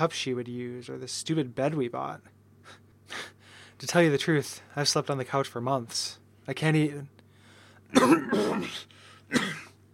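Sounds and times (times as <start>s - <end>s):
speech: 0.0s - 7.2s, 7.9s - 9.6s
man coughing: 7.9s - 9.8s.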